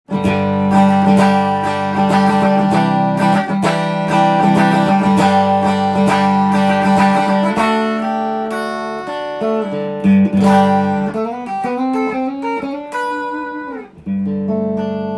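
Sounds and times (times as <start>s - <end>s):
Fender Mexico electric guitar: 0.0s - 15.1s.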